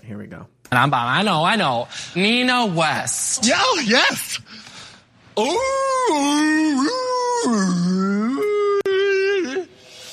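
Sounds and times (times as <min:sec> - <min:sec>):
speech: 0:00.1 - 0:04.7, 0:05.4 - 0:08.5
person imitating a whale call with moaning tones: 0:05.4 - 0:10.1.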